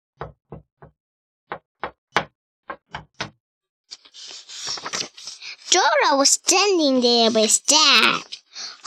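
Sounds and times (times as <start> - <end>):
knocking on a door: 0.2 - 3.4
broadband rustling and scraping: 3.9 - 6.0, 6.8 - 8.5
speech: 5.8 - 8.4.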